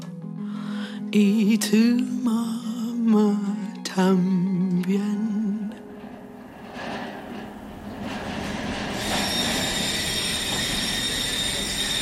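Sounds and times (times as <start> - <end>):
speech: 1.1 - 5.4
passenger train rumbling along the rails: 5.7 - 12.0
high sustained metallic train wheel squeal: 6.1 - 12.0.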